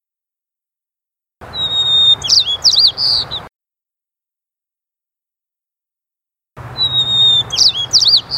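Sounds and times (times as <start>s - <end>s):
white-crowned sparrow singing: 1.4s - 3.5s, 6.6s - 8.3s.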